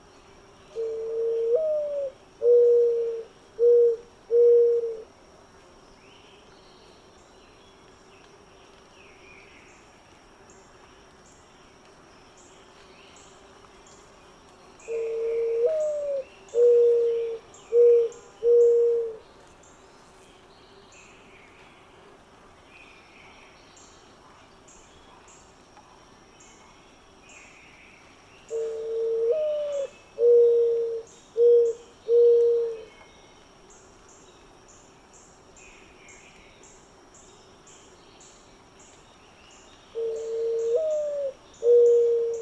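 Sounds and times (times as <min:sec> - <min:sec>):
faint insects: 0:00.0 - 0:42.4
dove cooing call: 0:00.8 - 0:05.0, 0:14.9 - 0:19.2, 0:28.5 - 0:32.9, 0:40.0 - 0:42.4.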